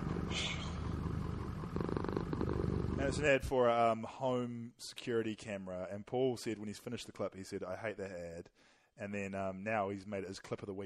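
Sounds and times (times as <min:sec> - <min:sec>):
cat purring: 0:00.0 - 0:03.5
speech: 0:03.0 - 0:10.8.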